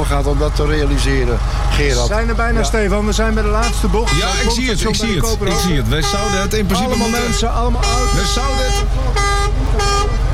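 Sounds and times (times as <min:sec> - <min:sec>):
low engine rumble: 0:00.0 - 0:10.3
speech: 0:00.2 - 0:10.2
vehicle horns blaring: 0:03.4 - 0:10.3.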